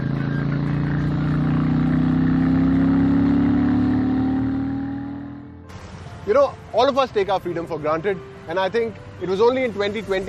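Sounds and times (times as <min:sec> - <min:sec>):
motorcycle exhaust droning through dual peashooter pipes: 0:00.0 - 0:05.6
speech: 0:06.3 - 0:10.2.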